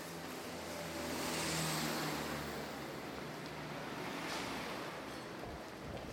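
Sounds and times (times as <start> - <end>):
street traffic rolling by: 0.0 - 6.1.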